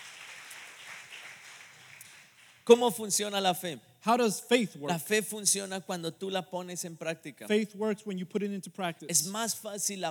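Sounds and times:
large crowd applauding: 0.0 - 2.7
speech: 2.7 - 10.0.

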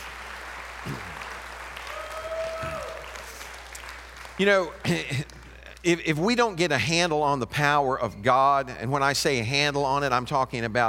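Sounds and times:
audience applauding: 0.0 - 5.8
speech: 4.4 - 10.8.

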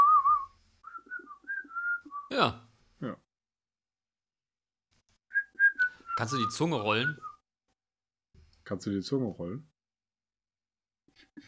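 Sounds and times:
person whistling a short wavering melody: 0.0 - 2.4, 5.3 - 7.4
speech: 2.3 - 3.2, 6.2 - 7.3, 8.7 - 9.7.

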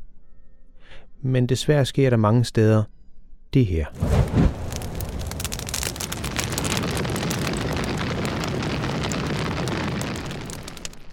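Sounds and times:
speech: 1.2 - 4.6
large rainforest fire roaring with crackling and popping: 3.9 - 11.1.

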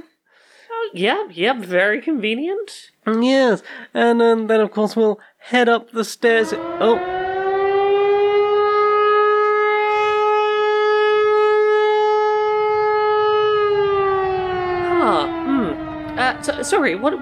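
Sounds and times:
speech: 0.9 - 7.2, 16.6 - 17.1
air raid siren wailing: 6.3 - 17.1.

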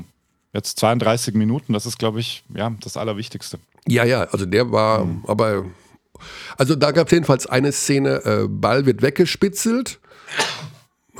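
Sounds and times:
speech: 0.5 - 10.7
person sneezing: 10.3 - 11.1.

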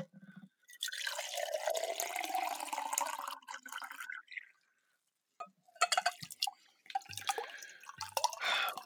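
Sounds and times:
water poured from pitcher into glass: 0.7 - 4.6, 6.0 - 8.8
water dripping and splashing: 6.2 - 8.8.

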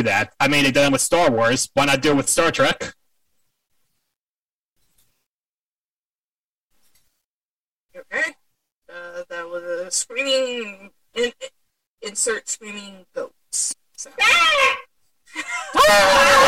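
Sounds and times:
speech: 0.0 - 3.0, 9.5 - 16.4
goats screaming: 15.7 - 16.4.

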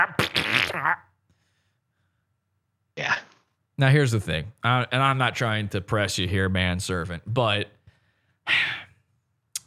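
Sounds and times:
cat farting: 0.0 - 1.0
speech: 0.0 - 1.1, 3.8 - 7.8.

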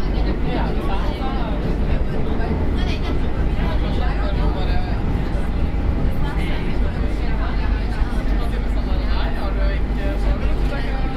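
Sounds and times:
Barcelona metro carriage rumbling: 0.0 - 11.1
metro passengers murmuring: 0.0 - 11.1.

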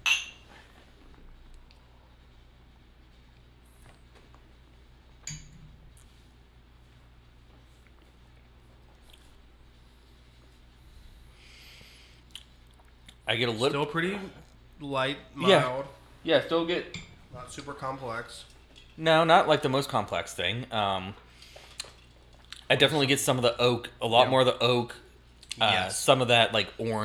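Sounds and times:
glasses clinking in a toast: 0.0 - 0.5, 16.9 - 17.8
speech: 13.3 - 21.2, 22.7 - 25.0, 25.6 - 27.0.

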